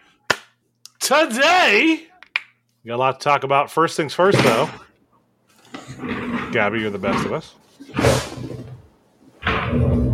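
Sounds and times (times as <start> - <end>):
speech: 1.1 - 2.1, 2.8 - 4.9, 5.9 - 8.5
office chair height being raised with a hissing clunk: 7.9 - 8.7.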